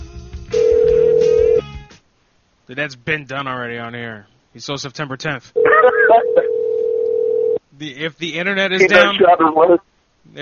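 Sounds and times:
low hum: 0.0 - 10.4
phone ring tone on a call ringing through to voicemail: 0.6 - 1.6, 5.6 - 7.6
speech: 2.7 - 6.8, 7.8 - 10.4.

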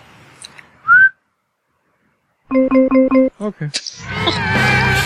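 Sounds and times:
person whistling: 0.9 - 1.2
speech: 2.5 - 4.9.

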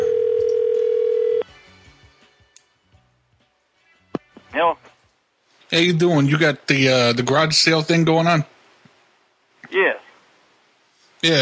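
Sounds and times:
landline dial tone: 0.0 - 1.4
speech: 5.7 - 8.6, 11.2 - 11.4.

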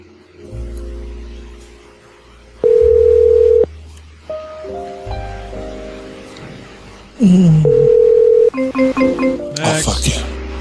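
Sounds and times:
push-button telephone dialing tones: 2.6 - 3.7, 7.7 - 8.5
speech: 7.2 - 7.8, 8.7 - 10.3.

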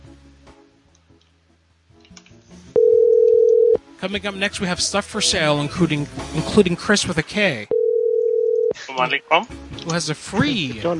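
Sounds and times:
electronic telephone ringing tone of a redialed call: 2.8 - 3.8, 7.7 - 8.8
speech: 4.0 - 7.8, 9.0 - 10.9.

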